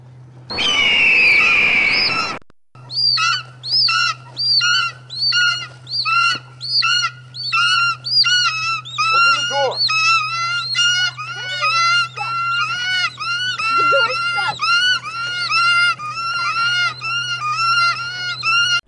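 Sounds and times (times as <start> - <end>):
steady low hum: 0.0 - 18.8
harsh noise burst: 0.5 - 2.6
shrill overlapping bird screeches: 0.5 - 18.8.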